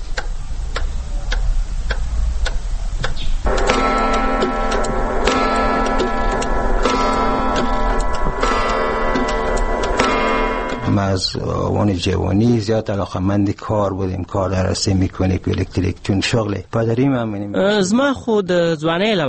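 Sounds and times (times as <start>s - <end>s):
large clock with locally made parts ticking: 0.0s - 13.0s
large clock sustained ringing chime: 3.5s - 11.6s
speech: 11.1s - 19.2s.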